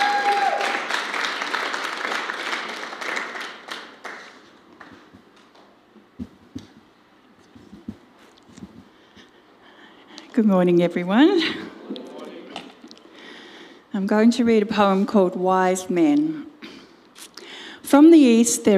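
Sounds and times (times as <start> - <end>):
crowd applauding: 0.0 - 5.1
speech: 10.4 - 11.7, 14.0 - 16.4, 18.0 - 18.7.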